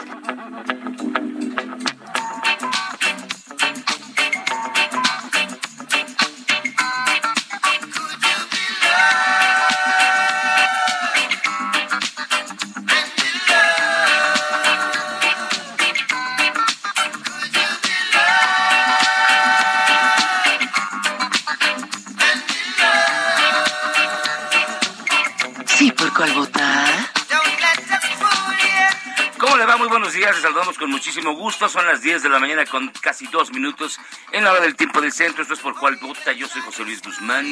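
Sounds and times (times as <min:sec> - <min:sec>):
reggae song: 0:00.0 - 0:37.4
speech: 0:00.5 - 0:01.4, 0:30.3 - 0:37.4.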